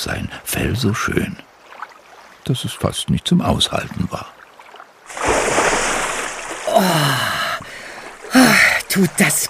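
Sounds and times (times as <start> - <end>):
speech: 0.0 - 1.5, 2.4 - 4.4, 8.9 - 9.4
churning water: 1.0 - 9.4
seal splashing into cool water: 5.1 - 8.4.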